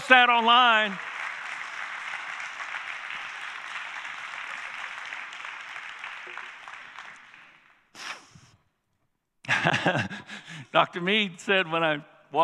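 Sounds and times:
audience applause: 0:00.0 - 0:08.0
brief loud burst of clapping: 0:00.0 - 0:08.5
speech: 0:00.1 - 0:01.1, 0:09.6 - 0:12.4
laughter: 0:09.5 - 0:10.7.

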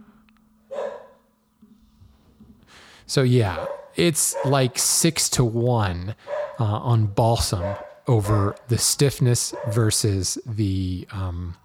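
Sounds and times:
dog barking: 0:00.7 - 0:01.2, 0:03.6 - 0:04.6, 0:06.2 - 0:06.6, 0:07.5 - 0:08.7, 0:09.5 - 0:10.0
speech: 0:03.1 - 0:11.6.

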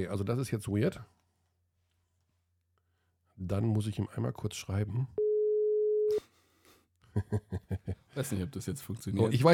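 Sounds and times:
speech: 0:00.0 - 0:01.2, 0:03.4 - 0:05.2, 0:07.2 - 0:09.5
phone call busy signal beeps: 0:05.2 - 0:06.2
steady phone tone: 0:05.2 - 0:06.2.

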